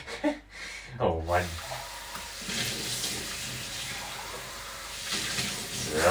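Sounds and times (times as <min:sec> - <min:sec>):
speech: 0:01.0 - 0:01.7
water running from a tap while a cup is rinsed: 0:01.3 - 0:06.0.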